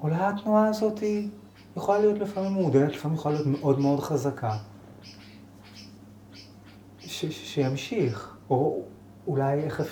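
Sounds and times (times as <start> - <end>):
speech: 0.0 - 5.2, 7.2 - 9.9
steady low hum: 0.0 - 9.9
faint bird chirps: 1.4 - 8.4, 9.4 - 9.9.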